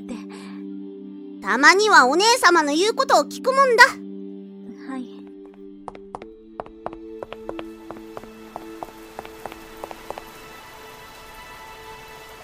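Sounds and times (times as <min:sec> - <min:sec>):
speech: 0:01.4 - 0:04.0
sharp rain drops tapping: 0:05.5 - 0:11.0
rain falling steadily with soft hiss: 0:07.6 - 0:12.4.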